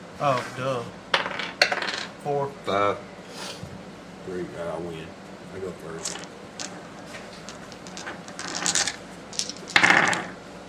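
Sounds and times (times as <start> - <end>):
speech: 0.2 - 1.0, 2.2 - 3.1, 4.2 - 6.4
dice clattering across a hard tabletop during a tabletop game: 1.1 - 2.1, 5.9 - 10.4.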